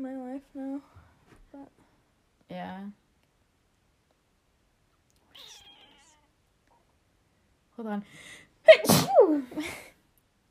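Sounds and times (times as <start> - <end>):
speech: 2.6 - 3.0, 7.8 - 9.8
sneeze: 8.7 - 9.4.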